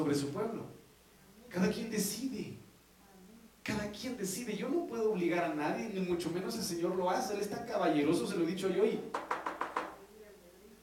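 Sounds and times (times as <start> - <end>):
speech: 0.0 - 0.8, 1.5 - 2.6, 3.7 - 9.4
quick knocks on a door: 9.1 - 10.0.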